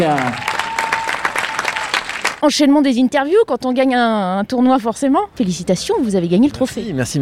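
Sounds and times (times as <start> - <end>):
speech: 0.0 - 0.6, 2.4 - 7.2
crowd applauding the winner of a competition: 0.0 - 2.4.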